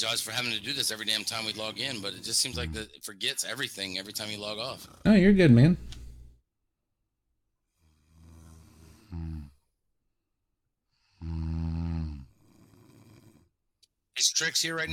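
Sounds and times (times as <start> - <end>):
speech: 0.0 - 6.0, 14.2 - 14.9
person snoring with rasping rattling inhales: 7.7 - 9.7, 11.0 - 13.5.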